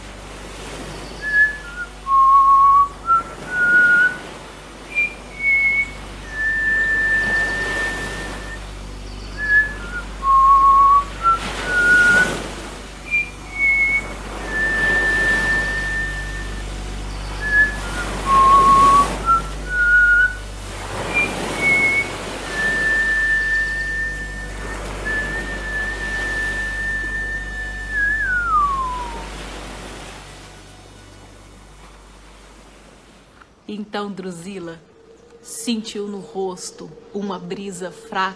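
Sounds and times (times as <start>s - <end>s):
soft steady wash: 0.0s - 38.3s
whistled melody: 1.0s - 4.3s, 4.9s - 12.4s, 13.0s - 20.4s, 21.0s - 29.3s
speech: 33.7s - 34.8s, 35.4s - 38.3s.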